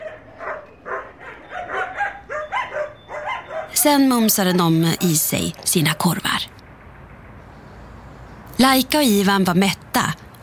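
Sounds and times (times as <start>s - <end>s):
two dogs barking happily: 0.0s - 5.2s
speech: 3.8s - 6.5s, 8.6s - 10.2s.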